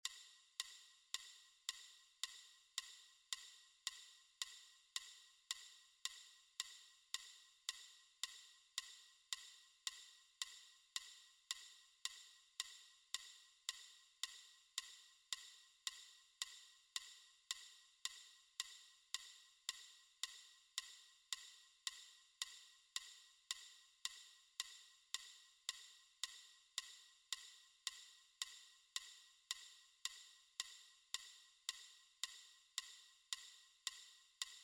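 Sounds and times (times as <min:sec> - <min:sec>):
metronome ticking at 110: 0:00.0 - 0:34.6.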